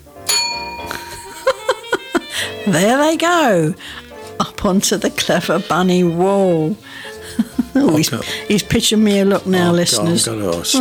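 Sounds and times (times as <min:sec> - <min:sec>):
bell ringing: 0:00.3 - 0:03.5
laughter: 0:01.0 - 0:02.9, 0:07.1 - 0:08.4
speech: 0:02.6 - 0:04.0, 0:04.6 - 0:07.1, 0:07.8 - 0:10.8.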